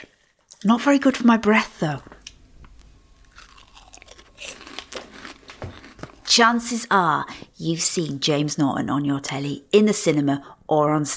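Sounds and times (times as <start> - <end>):
speech: 0.6 - 2.1, 6.4 - 11.1
crunchy snack dipped in spicy tomato sauce being chewed: 2.2 - 6.3.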